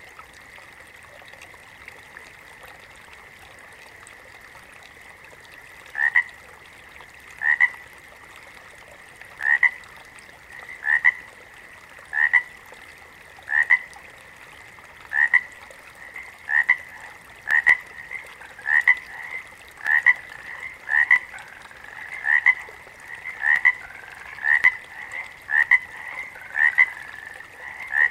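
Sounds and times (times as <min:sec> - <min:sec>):
water frog croaking: 0:05.9 - 0:06.3, 0:07.4 - 0:07.8, 0:09.4 - 0:09.8, 0:10.6 - 0:11.3, 0:12.1 - 0:12.6, 0:13.5 - 0:13.9, 0:15.1 - 0:28.0.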